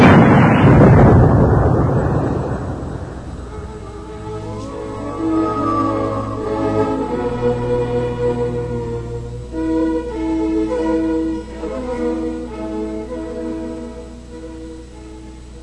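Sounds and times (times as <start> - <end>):
ship's cannon firing during a naval battle: 0.0 - 7.1
low drone: 0.0 - 15.6.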